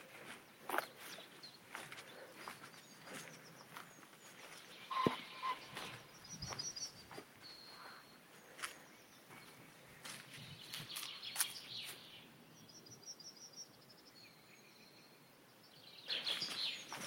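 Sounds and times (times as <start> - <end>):
faint rustles or footsteps: 0.0 - 12.1, 16.1 - 17.0
birds singing and chirping at the edge of woods on a hot sunny day: 0.0 - 17.0.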